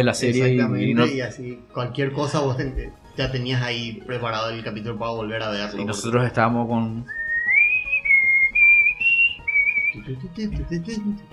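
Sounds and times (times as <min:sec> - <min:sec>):
speech: 0:00.0 - 0:07.2, 0:10.0 - 0:11.3
whistled TV series soundtrack melody a cappella: 0:06.9 - 0:11.3.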